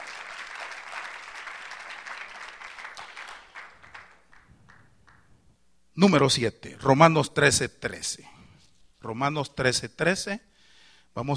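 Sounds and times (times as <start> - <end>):
church congregation applauding during a sermon: 0.0 - 5.4
speech: 6.0 - 8.4, 9.0 - 10.5, 11.2 - 11.3.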